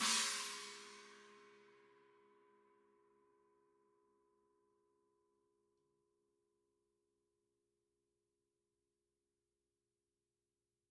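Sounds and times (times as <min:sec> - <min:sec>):
China cymbal: 0:00.0 - 0:01.6.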